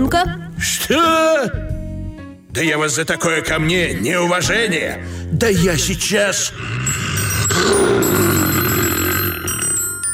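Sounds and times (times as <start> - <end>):
speech: 0.1 - 1.8, 2.6 - 8.2
telephone ringing: 6.9 - 10.1.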